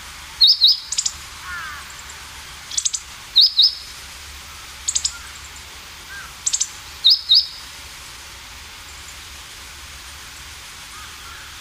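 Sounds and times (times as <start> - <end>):
meadow bunting ticking calls: 0.0 - 11.5
faint lower meadow bunting call: 0.4 - 5.5, 6.1 - 7.7, 10.9 - 11.5.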